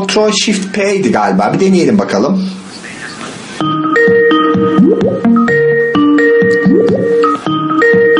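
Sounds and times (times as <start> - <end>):
speech: 0.0 - 2.6
phone ringtone melody for incoming group voice call: 3.6 - 8.1.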